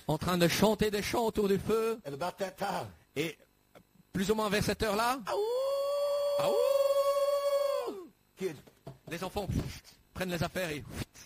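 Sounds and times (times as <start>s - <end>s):
speech: 0.1s - 3.5s, 4.2s - 5.6s, 6.4s - 6.8s, 8.4s - 11.2s
coyote howling at night: 5.3s - 8.1s.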